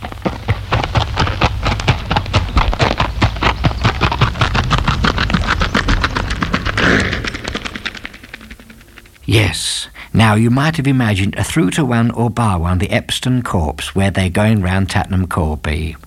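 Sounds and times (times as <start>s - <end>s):
artificial galloping horse hoofbeats sound effect: 0.0s - 9.4s
speech: 9.3s - 16.0s.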